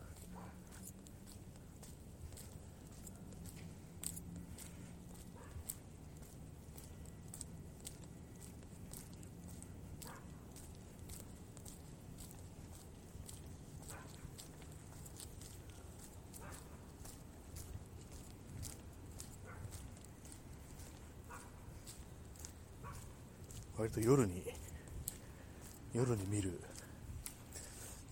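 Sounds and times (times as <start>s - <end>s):
faint footsteps shuffling: 0.0s - 28.1s
dog barking at night: 0.1s - 0.8s, 5.3s - 5.8s, 10.0s - 10.4s, 13.8s - 14.3s, 16.4s - 16.8s, 19.4s - 19.8s, 21.2s - 21.6s, 22.8s - 23.2s
speech: 23.8s - 24.7s, 26.0s - 26.7s.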